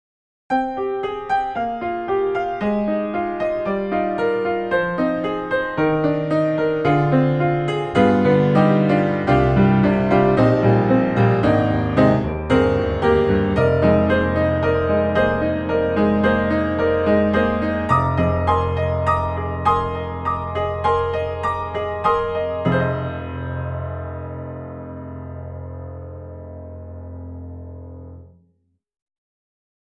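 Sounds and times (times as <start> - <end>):
virtual grand piano: 0.5 - 28.6.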